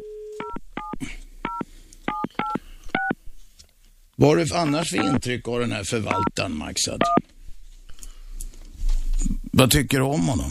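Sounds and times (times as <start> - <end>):
phone keypad tones of a number being dialed: 0.4 - 3.2, 6.1 - 6.3
speech: 4.2 - 7.3, 9.6 - 10.4.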